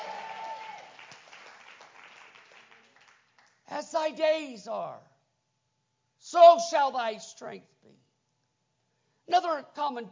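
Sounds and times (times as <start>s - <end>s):
audience clapping hands: 0.0s - 3.7s
speech: 3.8s - 5.1s, 6.3s - 8.0s, 9.3s - 10.1s.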